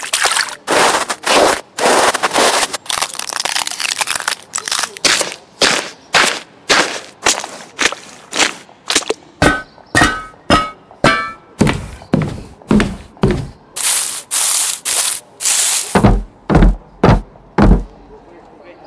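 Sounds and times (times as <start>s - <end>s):
footsteps: 0.3s - 3.1s, 4.8s - 13.6s, 15.9s - 18.0s.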